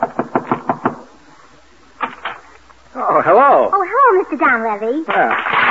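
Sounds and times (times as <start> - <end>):
sharp knocks on a wooden door: 0.0 - 1.1
speech: 3.2 - 5.6.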